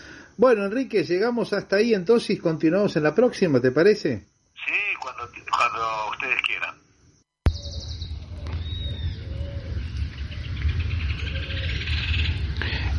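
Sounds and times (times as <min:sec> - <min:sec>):
speech: 0:00.4 - 0:06.8
birds chirping and singing: 0:07.5 - 0:12.9
low constant outdoor rumble: 0:07.5 - 0:12.9.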